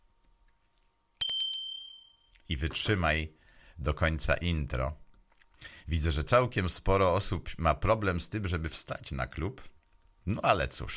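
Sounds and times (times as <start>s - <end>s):
small bell ringing: 1.2s - 2.3s
speech: 2.5s - 5.0s, 5.6s - 10.9s.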